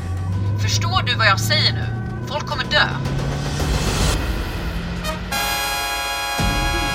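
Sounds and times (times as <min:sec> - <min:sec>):
vehicles in a car chase on the E14 roaring past: 0:00.0 - 0:05.7
constant low road rumble: 0:00.0 - 0:06.9
speech: 0:00.7 - 0:03.3
sustained car horn blaring: 0:05.0 - 0:06.9.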